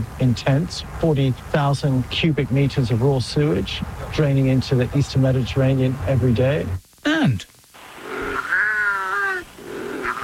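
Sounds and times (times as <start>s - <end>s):
speech: 0.0s - 7.6s
wildcat calling with a harmonic yowl: 8.0s - 10.2s.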